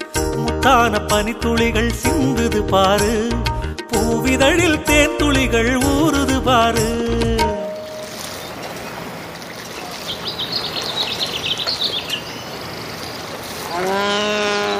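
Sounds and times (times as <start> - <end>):
speech: 0.6 - 7.4
birds chirping and trilling: 7.7 - 14.7.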